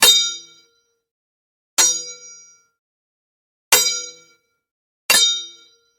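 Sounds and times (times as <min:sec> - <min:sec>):
sword impact variations: 0:00.0 - 0:00.5, 0:01.8 - 0:02.4, 0:03.7 - 0:04.3, 0:05.1 - 0:05.6.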